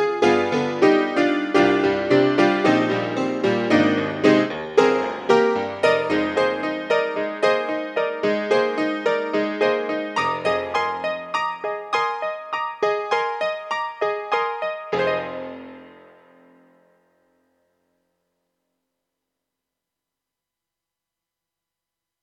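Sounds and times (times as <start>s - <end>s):
detuned grand piano sample: 0.2s - 15.8s.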